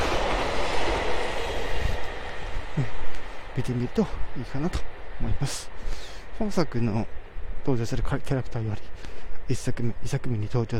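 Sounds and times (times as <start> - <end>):
train rumbling on rails: 0.0 - 10.7
speech: 2.8 - 3.0, 3.6 - 10.7.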